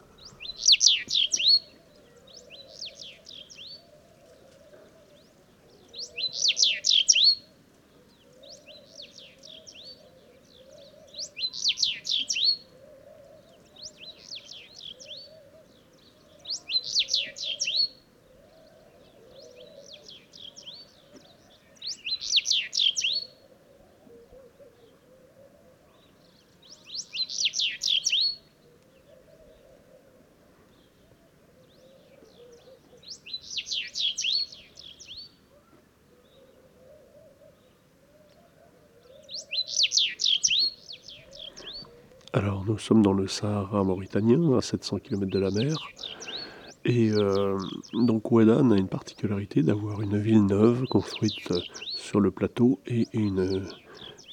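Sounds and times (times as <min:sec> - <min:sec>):
house bunting singing in the ruins of Ouadane in the Mauritanian Sahara: 0:00.0 - 0:54.3
soft low murmur: 0:41.6 - 0:54.3
speech: 0:42.4 - 0:46.0, 0:46.9 - 0:54.3.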